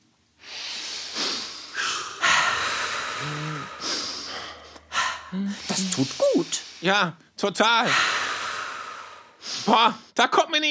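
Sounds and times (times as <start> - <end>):
deep breathing in and out letting out frustration: 0.4 - 6.9, 7.8 - 9.8
speech: 3.2 - 3.9, 5.3 - 8.1, 9.7 - 10.7.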